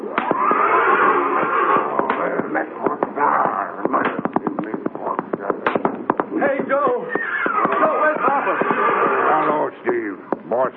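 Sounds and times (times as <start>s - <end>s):
stamping hooves: 0.0s - 10.7s
horse neighing and snorting agitatedly: 0.2s - 2.1s, 7.0s - 9.5s
scuffling thumps: 1.4s - 10.7s.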